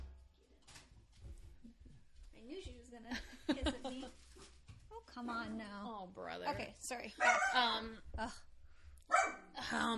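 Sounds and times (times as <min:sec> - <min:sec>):
speech: 0:02.4 - 0:04.6, 0:05.2 - 0:08.5, 0:09.7 - 0:09.9
dog barking: 0:07.2 - 0:07.7, 0:09.1 - 0:09.5.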